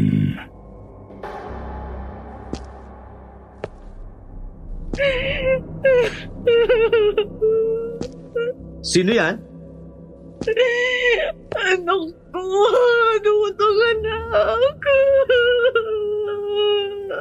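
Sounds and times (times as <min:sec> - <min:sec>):
woman crying in wavering wails and sobs: 0:04.9 - 0:08.7, 0:10.4 - 0:17.2
speech: 0:05.0 - 0:07.8, 0:08.8 - 0:09.5, 0:10.4 - 0:16.0.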